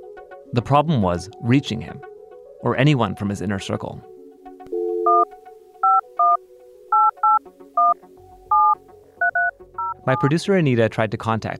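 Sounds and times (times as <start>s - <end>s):
speech: 0.5s - 4.1s, 10.1s - 11.5s
cell phone touch tones dialing a number: 4.7s - 10.3s.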